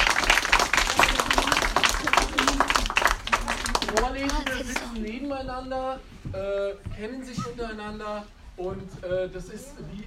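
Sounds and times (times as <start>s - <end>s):
group of people applauding: 0.0s - 5.2s
speech: 5.4s - 10.0s.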